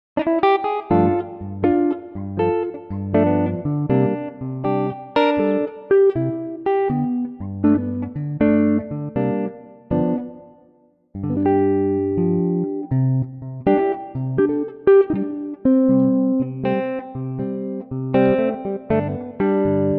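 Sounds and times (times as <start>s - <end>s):
electric guitar playing G: 0.2s - 19.9s.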